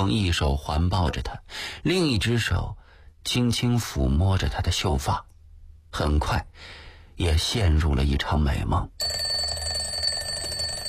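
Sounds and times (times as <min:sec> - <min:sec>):
speech: 0:00.0 - 0:05.3, 0:05.9 - 0:09.2
alarm clock ringing with a high-pitched electronic ring in the morning: 0:09.0 - 0:10.8.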